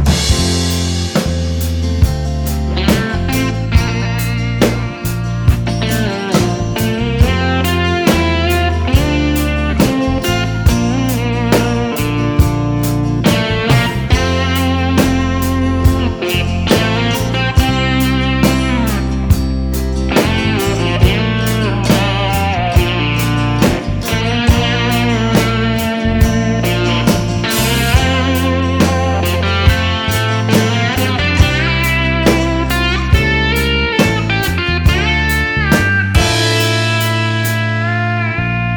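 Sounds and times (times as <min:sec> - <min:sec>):
slide solo mix: 0:00.1 - 0:38.7.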